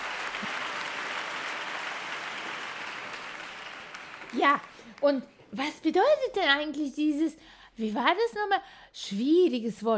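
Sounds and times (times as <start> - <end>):
large audience applauding enthusiastically: 0.0 - 5.0
speech: 4.3 - 9.9.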